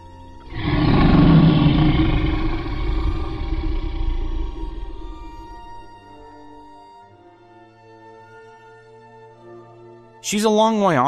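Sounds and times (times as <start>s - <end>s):
giant dragon roaring: 0.4s - 6.5s
speech: 10.3s - 11.0s.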